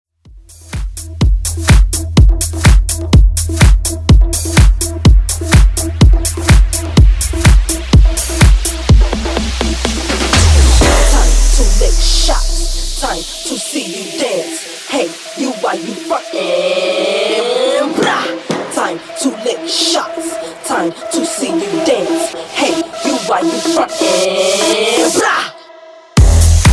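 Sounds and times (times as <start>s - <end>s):
bass house dance mix at 125 bpm: 0.2s - 26.7s.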